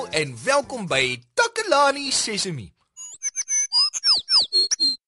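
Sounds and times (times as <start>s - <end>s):
speech: 0.2s - 2.8s
small bird chirping: 3.0s - 5.0s.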